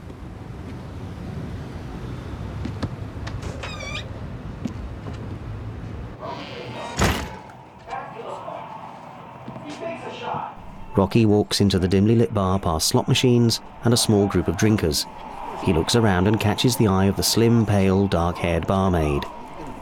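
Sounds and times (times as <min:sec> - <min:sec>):
wooden door creaking open with a squeaky groan: 0:03.2 - 0:04.2, 0:06.2 - 0:07.9
speech: 0:11.0 - 0:19.4.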